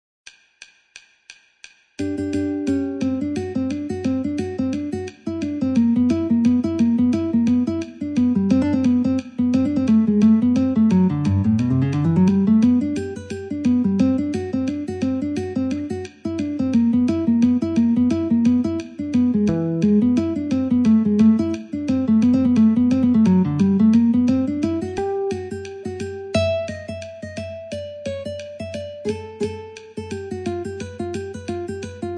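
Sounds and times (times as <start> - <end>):
metronome at 88 BPM: 0.3 - 32.1
ragtime guitar: 2.0 - 32.1.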